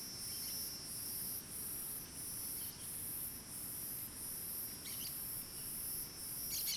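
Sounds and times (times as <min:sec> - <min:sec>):
other cicadas droning in dry forest: 0:00.1 - 0:06.7
birds chirping: 0:04.9 - 0:05.1, 0:06.5 - 0:06.7
shrill cicada buzzing in dry forest: 0:06.4 - 0:06.7.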